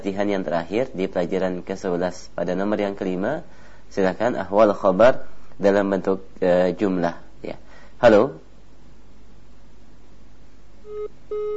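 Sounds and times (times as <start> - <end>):
speech: 0.0 - 8.4, 11.0 - 11.5
phone line tone after a call disconnects on a live call-in line: 10.8 - 11.5.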